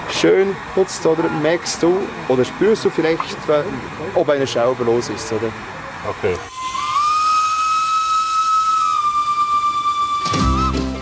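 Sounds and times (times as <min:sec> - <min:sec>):
hissing steam of a steam locomotive: 0:00.0 - 0:10.7
speech: 0:00.2 - 0:06.8
steam locomotive whistle on a mountain line: 0:06.5 - 0:11.0.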